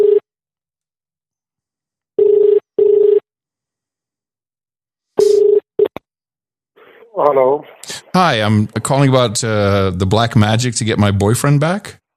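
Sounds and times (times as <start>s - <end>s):
ringback tone of an outgoing phone call: 2.2s - 3.2s, 5.2s - 5.6s
speech: 7.2s - 12.0s.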